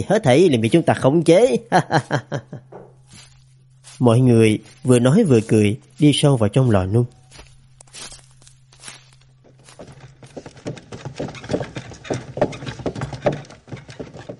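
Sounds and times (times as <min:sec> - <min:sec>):
speech: 0:00.0 - 0:03.3, 0:04.0 - 0:07.2
laughter: 0:01.6 - 0:02.7
ox cart plodding along and swaying: 0:02.0 - 0:14.3.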